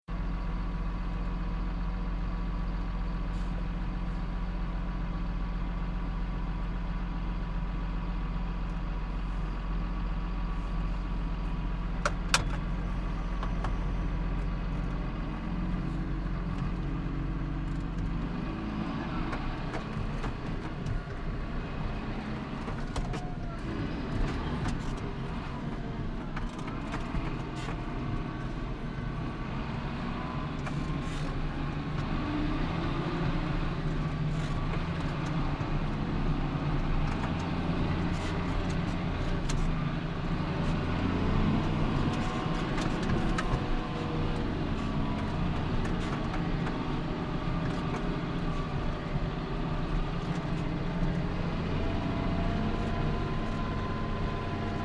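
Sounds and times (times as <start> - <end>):
potato harvester tractor engine revving while reversing, heard in cab: 0.2 - 54.8.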